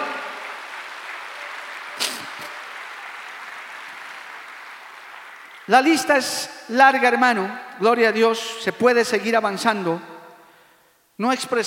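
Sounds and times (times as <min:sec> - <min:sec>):
audience applauding: 0:00.0 - 0:06.2
speech: 0:05.7 - 0:10.1, 0:11.2 - 0:11.6.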